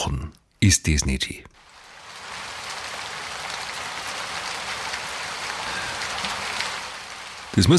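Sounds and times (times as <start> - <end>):
speech: 0.1 - 1.6, 7.6 - 7.7
steady rain hiss: 1.5 - 7.7.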